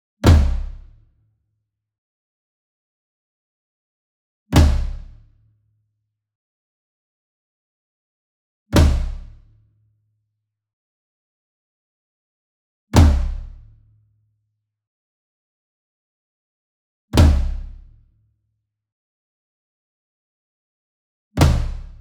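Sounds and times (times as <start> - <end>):
concert tom drum flam with hard beater: 0.2 - 0.8, 4.5 - 5.2, 8.8 - 9.3, 13.0 - 13.6, 17.2 - 17.7, 21.4 - 21.9.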